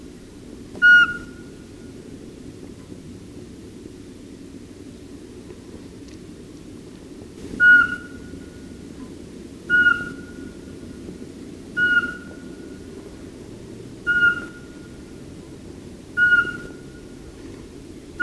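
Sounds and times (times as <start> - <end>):
low rumbling background noise: 0.0 - 18.2
Eurasian Pygmy Owl whistling single piping notes: 0.8 - 1.5, 7.6 - 8.6, 9.7 - 10.6, 11.8 - 12.8, 14.0 - 14.9, 16.2 - 17.0.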